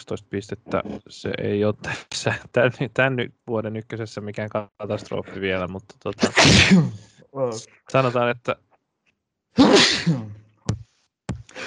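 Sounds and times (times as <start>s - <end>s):
speech: 0.0s - 8.6s, 9.6s - 10.4s
laughter: 1.2s - 3.7s, 4.6s - 5.8s
loud sneeze: 6.2s - 7.1s, 9.6s - 10.4s.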